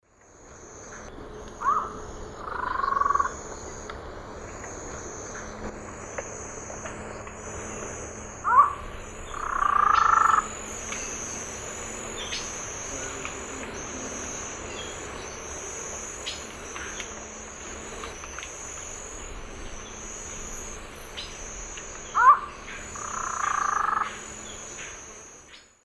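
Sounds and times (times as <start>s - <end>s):
Thamnophilus cryptoleucus calls in the Eastern Lowlands of South America: 0.9s - 3.8s, 8.4s - 17.3s, 19.6s - 25.7s.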